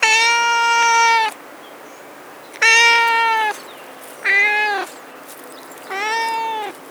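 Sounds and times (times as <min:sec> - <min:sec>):
cat meowing: 0:00.0 - 0:01.4, 0:02.6 - 0:03.6, 0:04.2 - 0:05.0, 0:05.9 - 0:06.8.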